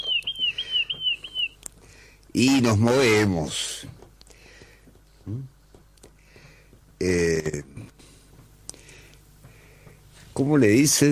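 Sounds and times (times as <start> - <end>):
small bird chirping in a high thin warbling trill: 0.0 - 1.7
speech: 2.4 - 4.0, 5.3 - 5.5, 7.0 - 7.7, 10.4 - 11.1.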